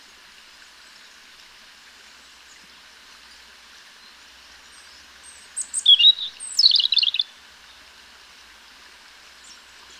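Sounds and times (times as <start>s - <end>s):
European robin Erithacus rubecula song: 4.8s - 7.3s.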